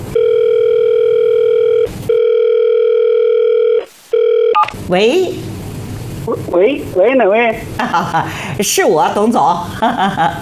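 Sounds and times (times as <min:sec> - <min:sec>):
telephone ringback tone: 0:00.1 - 0:04.7
speech: 0:04.9 - 0:05.5, 0:06.3 - 0:10.4.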